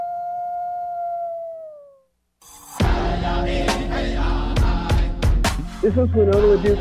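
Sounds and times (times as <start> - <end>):
lone wolf howling: 0.0 - 2.0
loud busy music: 2.8 - 6.7
speech: 5.8 - 6.7.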